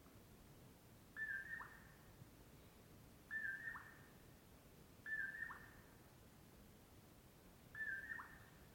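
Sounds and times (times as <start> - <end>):
steady low hiss: 0.0 - 8.7
common poorwill mellow poor-will-low call in early summer morning: 1.2 - 1.8, 3.3 - 4.0, 5.1 - 5.7, 7.8 - 8.4.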